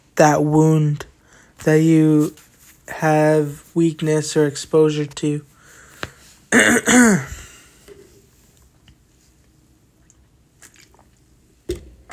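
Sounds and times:
speech: 0.2s - 5.5s, 6.5s - 7.4s
person drinking water with throaty gulps: 10.0s - 11.4s.

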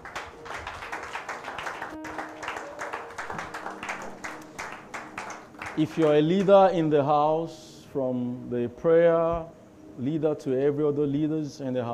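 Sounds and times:
roomful of people clapping hands in applause: 0.0s - 6.8s
speech: 5.8s - 11.9s.

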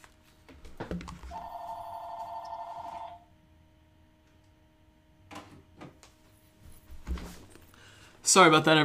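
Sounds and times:
telephone ringing in a warbling tone: 1.3s - 3.3s
speech: 8.3s - 8.8s.

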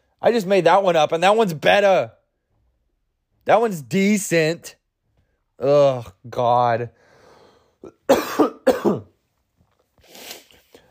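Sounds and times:
speech: 0.2s - 2.2s, 3.4s - 4.8s, 5.6s - 7.0s, 7.8s - 9.1s
person coughing hard: 7.8s - 9.2s.

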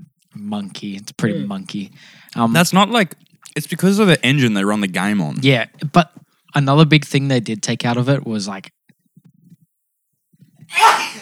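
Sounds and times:
speech: 0.4s - 8.8s
faint catching breaths: 1.3s - 2.4s
person sneezing: 10.7s - 11.2s.

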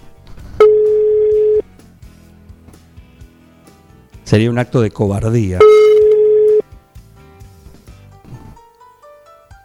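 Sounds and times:
ringback tones of an outgoing phone call made live on air: 0.6s - 1.7s, 5.6s - 6.6s
speech: 4.3s - 5.8s.

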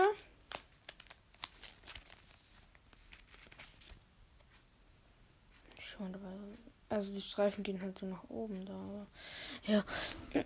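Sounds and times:
crinkly plastic sleeve rustling as a holo trading card slides in: 0.0s - 4.0s
speech: 6.0s - 10.4s.

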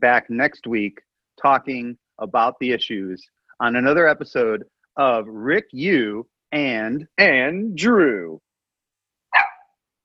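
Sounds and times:
speech: 0.0s - 8.5s
sharp dog bark: 9.3s - 9.7s.

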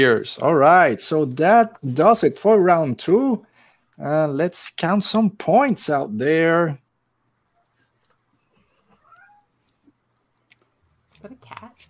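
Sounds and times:
speech: 0.0s - 6.8s
cat meowing: 9.0s - 9.6s.

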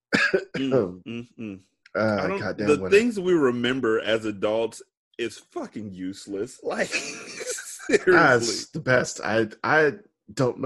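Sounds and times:
rough throaty coughing after hard laughter: 0.1s - 3.1s, 6.6s - 9.5s
speech: 0.6s - 7.2s, 7.9s - 10.6s
breathless voiced laughter: 6.6s - 8.8s.

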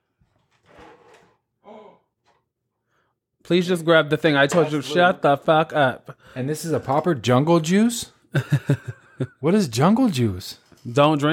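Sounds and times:
drawer sliding open with a scraping rush: 0.4s - 1.4s
speech: 3.5s - 11.3s
laughter: 8.3s - 9.6s.

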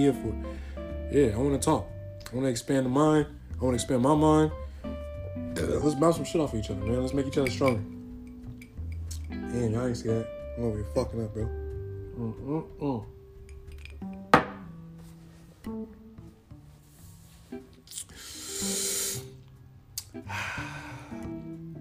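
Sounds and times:
speech: 0.0s - 4.6s, 5.6s - 8.0s, 9.5s - 11.6s, 12.2s - 13.2s
glass clinking: 7.3s - 9.3s, 13.5s - 14.7s.

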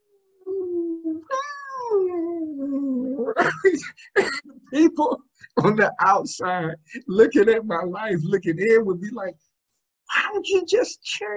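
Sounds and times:
voice imitating a moaning dog: 0.0s - 3.4s
speech: 3.4s - 9.5s, 10.1s - 11.3s.

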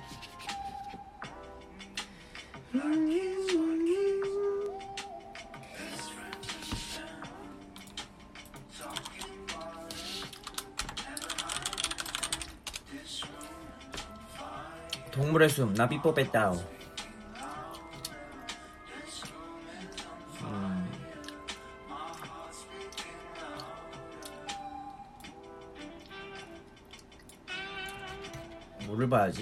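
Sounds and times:
music with a sustained melodic tone: 0.0s - 29.4s
speech: 2.7s - 3.4s, 15.3s - 16.8s
keyboard keys clicking while typing a search: 8.9s - 9.6s, 10.3s - 12.8s.

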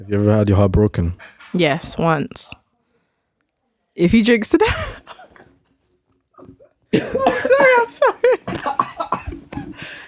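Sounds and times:
speech: 0.0s - 2.6s, 4.0s - 5.2s, 6.4s - 10.0s
man coughing: 6.9s - 10.0s.

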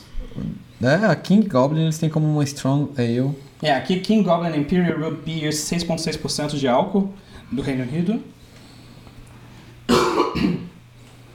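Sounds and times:
low steady hum: 0.0s - 11.3s
speech: 0.3s - 8.4s
person coughing: 9.9s - 10.8s.

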